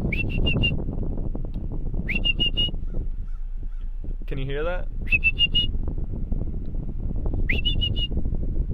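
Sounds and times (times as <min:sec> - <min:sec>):
person whistling short bursts of high notes: 0:00.0 - 0:00.8, 0:02.0 - 0:02.8, 0:05.1 - 0:05.7, 0:07.5 - 0:08.2
low engine-like rumble: 0:00.0 - 0:08.7
speech: 0:04.4 - 0:05.6.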